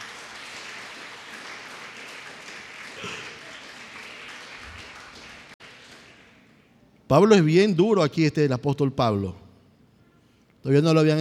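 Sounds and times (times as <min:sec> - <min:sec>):
audience applauding: 0:00.0 - 0:06.4
speech: 0:07.1 - 0:09.4, 0:10.6 - 0:11.1.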